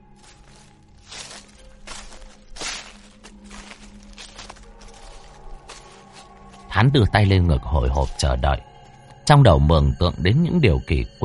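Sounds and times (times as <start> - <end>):
footsteps crunching on dry leaves: 0.0 - 8.5
speech: 6.8 - 8.7, 9.3 - 11.2.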